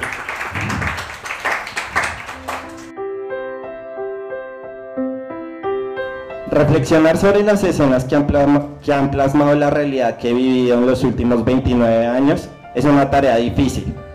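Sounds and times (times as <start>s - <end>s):
audience applause: 0.0s - 2.9s
bright melodic music passage of sustained notes: 2.2s - 10.8s
speech: 6.6s - 14.0s.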